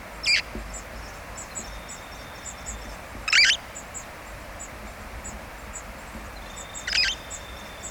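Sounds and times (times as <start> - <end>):
red-fronted parrot calls: 0.3 - 0.5, 3.3 - 3.7, 6.5 - 7.8.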